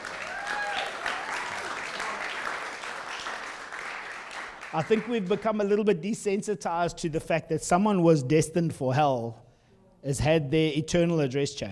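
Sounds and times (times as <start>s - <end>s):
faint whoops and cheers: 0.0s - 2.5s
audience clapping: 0.0s - 5.7s
speech: 4.7s - 9.4s, 10.0s - 11.7s.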